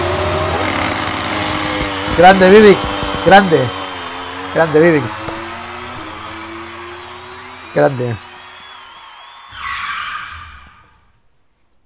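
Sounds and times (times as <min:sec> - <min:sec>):
Ducati motorcycle engine roaring at a race start: 0:00.0 - 0:09.5
speech: 0:02.2 - 0:03.8, 0:04.5 - 0:05.2, 0:07.7 - 0:08.2.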